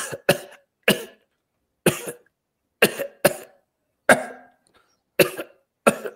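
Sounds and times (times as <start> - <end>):
woman coughing short dry coughs in a store: 0.0 - 1.2, 1.9 - 4.5, 5.2 - 6.1.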